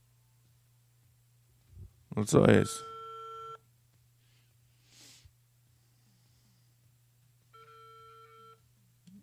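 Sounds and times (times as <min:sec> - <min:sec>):
speech: 0:02.2 - 0:02.9
telephone ringback tone from an unanswered call: 0:02.6 - 0:03.6, 0:07.5 - 0:08.6.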